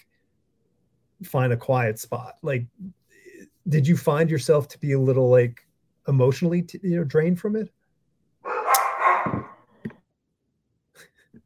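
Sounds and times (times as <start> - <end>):
speech: 1.2 - 7.8
dogs barking excitedly: 8.4 - 9.6.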